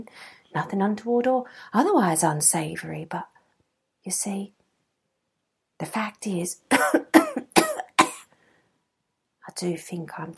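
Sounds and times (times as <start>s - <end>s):
speech: 0.0s - 3.4s, 4.0s - 4.6s, 5.8s - 7.0s, 9.5s - 10.3s
harsh coughing from a person with tuberculosis: 6.7s - 8.3s.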